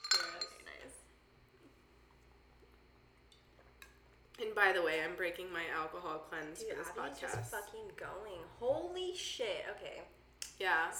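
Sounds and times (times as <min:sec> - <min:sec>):
glasses clinking together in a toast: 0:00.0 - 0:00.7
speech: 0:04.4 - 0:10.9.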